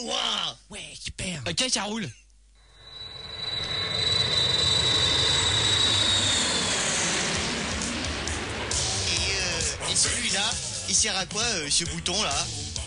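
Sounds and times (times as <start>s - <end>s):
speech: 1.5s - 2.2s, 10.4s - 12.7s
thin high whine: 2.6s - 11.3s
propeller airplane engine warming up before takeoff: 2.7s - 11.3s.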